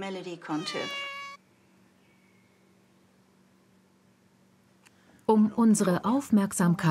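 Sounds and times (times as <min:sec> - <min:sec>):
speech: 0:00.0 - 0:01.1, 0:05.3 - 0:06.8
cat meowing: 0:00.5 - 0:01.4.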